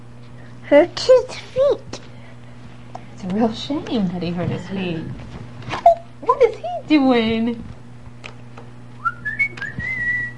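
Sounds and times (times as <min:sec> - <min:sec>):
steady low hum: 0:00.0 - 0:10.3
speech: 0:00.7 - 0:02.0, 0:03.2 - 0:05.2, 0:06.4 - 0:07.8
whistled melody: 0:09.0 - 0:10.3.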